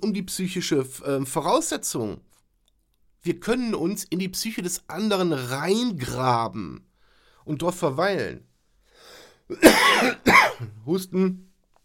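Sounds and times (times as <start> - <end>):
speech: 0.0 - 2.4, 3.2 - 8.5, 9.5 - 11.5
person coughing harshly: 9.5 - 10.8.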